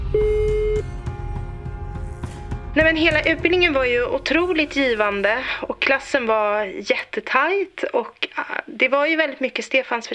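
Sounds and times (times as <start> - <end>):
telephone ringback tone on an outgoing call: 0.1 - 0.9
speech: 2.8 - 10.1.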